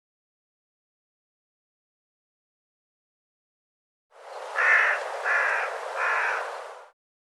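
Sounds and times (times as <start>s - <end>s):
bird cawing: 4.5s - 6.6s.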